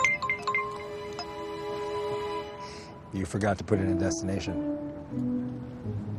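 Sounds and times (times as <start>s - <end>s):
bright electronic chime notes of a mobile phone: 0.0s - 1.6s
man's mobile phone ringing: 0.0s - 2.6s
speech: 3.1s - 6.0s.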